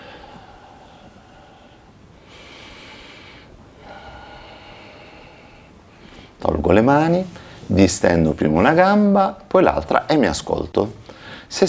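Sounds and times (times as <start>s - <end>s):
slow deep breathing in and out during a guided floor exercise with stretching: 0.0s - 6.4s, 7.3s - 7.7s, 11.0s - 11.5s
steady hiss: 0.0s - 11.6s
speech: 6.7s - 11.6s.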